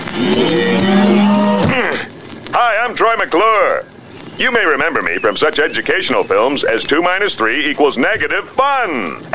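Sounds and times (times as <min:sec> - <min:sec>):
cow mooing in cattle country: 0:00.0 - 0:01.8
speech: 0:02.9 - 0:09.3.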